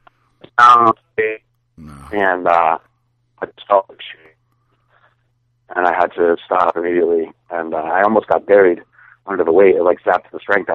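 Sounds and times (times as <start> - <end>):
speech: 0.6 - 1.4, 2.0 - 4.2, 5.7 - 10.7
voice over a phone line breaking up: 1.8 - 2.3.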